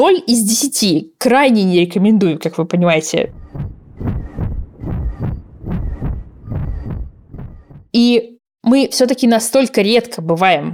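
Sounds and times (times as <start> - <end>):
speech: 0.0 - 3.7, 7.9 - 10.7
deep heartbeat: 3.3 - 7.9.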